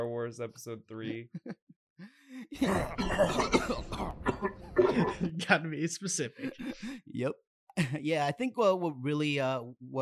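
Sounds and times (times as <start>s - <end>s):
speech: 0.0s - 10.0s
laughter: 1.0s - 1.6s, 4.7s - 7.2s, 7.8s - 8.0s
voice imitating a rough phlegmy old man's smoker cough: 2.6s - 5.4s.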